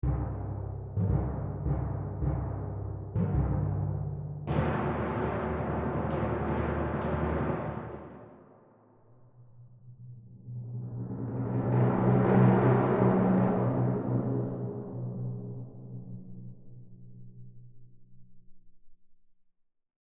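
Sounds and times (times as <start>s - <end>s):
timpani: 0.0s - 8.6s, 10.6s - 16.3s.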